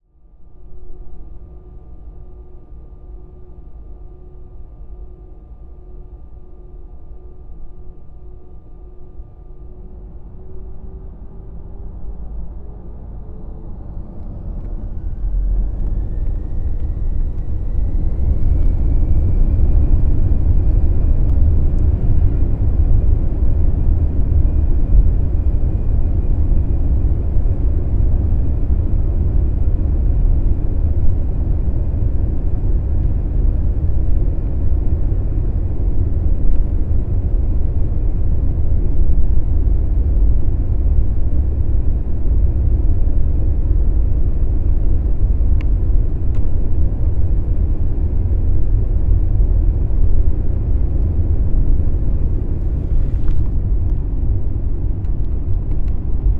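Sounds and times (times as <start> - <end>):
Airbus A319 taking off: 11.7 - 40.2, 41.4 - 56.3.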